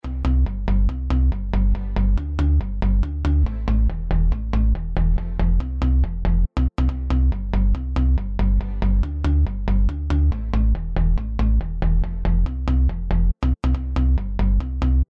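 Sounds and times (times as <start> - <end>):
bass house music: 0.0 - 15.0.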